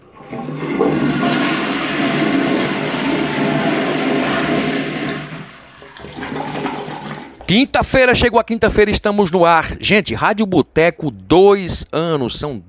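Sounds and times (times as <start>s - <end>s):
toilet flushing: 0.0s - 7.7s
speech: 7.5s - 12.6s.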